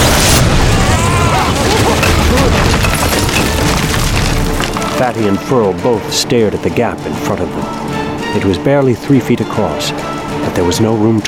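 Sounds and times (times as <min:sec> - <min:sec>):
rock ledge explosion with crackling debris: 0:00.0 - 0:05.3
speech: 0:05.1 - 0:11.2.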